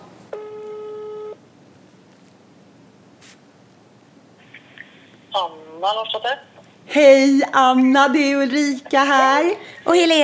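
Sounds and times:
outgoing phone call ringback tone: 0.3s - 1.4s
speech: 5.3s - 10.2s.

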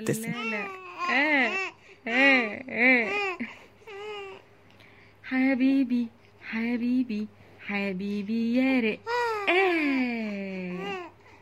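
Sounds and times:
speech: 0.0s - 3.5s, 5.3s - 10.9s
baby whimpering, babbling and crying: 0.1s - 4.4s, 9.1s - 10.0s.

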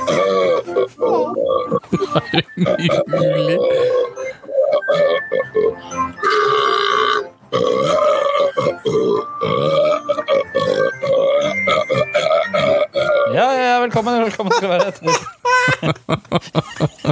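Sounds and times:
long loud warbling burp: 0.0s - 1.8s, 2.6s - 13.4s
speech: 0.1s - 7.7s, 16.1s - 17.1s
laughter: 1.7s - 3.9s, 13.8s - 17.1s.

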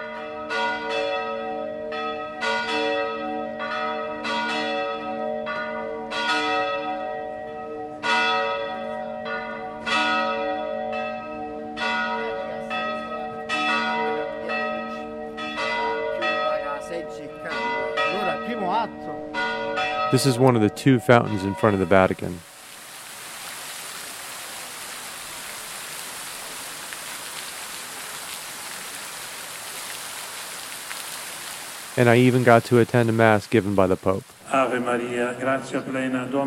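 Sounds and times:
church bells ringing the hour in an alley in Rome: 0.0s - 22.4s
speech: 20.1s - 22.5s, 32.0s - 36.4s.

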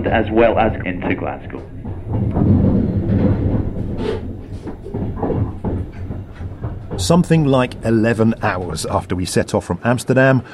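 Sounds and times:
speech: 0.0s - 2.7s, 7.0s - 10.5s
faint rattling and clacking from the train carriages: 0.0s - 10.0s
train rumbling near its terminal station in Glasgow, Scotland: 0.0s - 10.5s.

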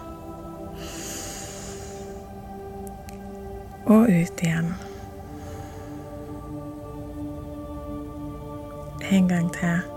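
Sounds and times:
soft hum: 0.0s - 9.9s
deep inhale through the nose: 0.7s - 2.4s, 4.8s - 6.3s
speech: 3.9s - 4.9s, 9.1s - 9.9s.

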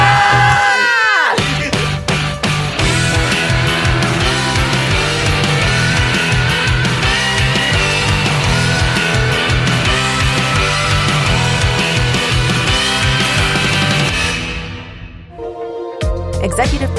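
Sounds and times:
several people screaming together: 0.0s - 1.4s
music playing: 0.0s - 16.9s.

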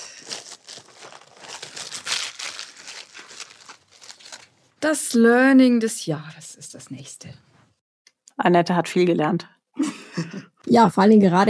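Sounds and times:
small bag rustling as something is rummaged through: 0.0s - 4.7s
speech: 4.8s - 7.5s, 8.4s - 11.4s
laughter: 9.8s - 10.6s.

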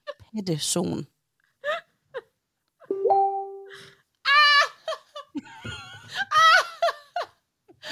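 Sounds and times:
speech: 0.4s - 1.1s
electronic notification chime for incoming messages: 2.9s - 3.7s
people laughing and giggling: 4.4s - 7.9s.

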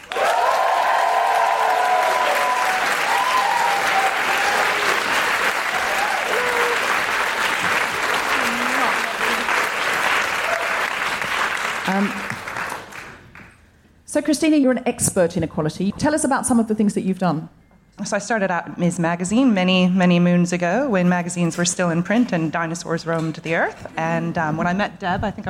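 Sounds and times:
excited audience whoops and cheers at a live show: 0.0s - 11.3s
audience applause at a live show: 0.0s - 13.5s
speech: 14.2s - 25.4s.

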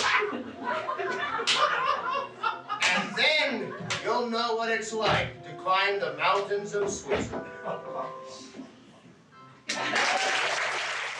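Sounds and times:
laughter: 0.0s - 4.0s, 9.7s - 10.7s
person slapping thighs: 1.4s - 1.7s
speech: 4.3s - 8.6s.

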